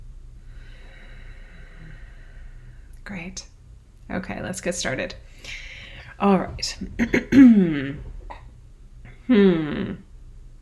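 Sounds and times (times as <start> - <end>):
low hum: 0.0 - 10.6
long slow deep inhalation: 0.4 - 3.0, 5.3 - 6.2
speech: 3.1 - 8.1, 9.3 - 10.0.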